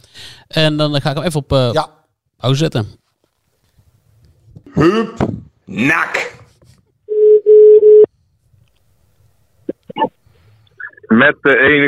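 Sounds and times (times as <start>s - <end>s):
speech: 0.5s - 3.0s, 4.8s - 6.4s, 11.1s - 11.8s
telephone tone during a phone call: 7.1s - 8.1s.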